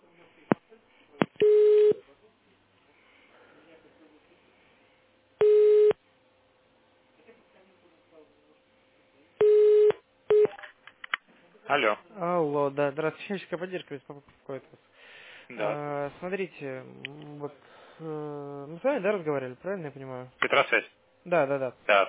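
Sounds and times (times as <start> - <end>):
telephone line beeps while a call is being transferred: 5.4 - 6.0, 9.4 - 10.6
speech: 11.7 - 22.0.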